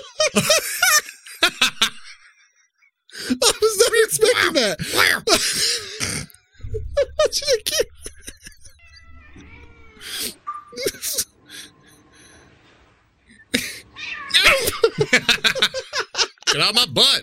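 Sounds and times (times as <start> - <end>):
speech: 0.0 - 0.6, 4.2 - 6.2, 7.3 - 7.6, 16.6 - 17.2
laughter: 0.0 - 2.5, 3.2 - 9.0, 10.0 - 12.1, 13.3 - 16.7
cats yowling and meowing in long wavering cries: 8.4 - 11.2, 13.7 - 15.0
cats hissing: 8.8 - 11.8, 13.4 - 15.5.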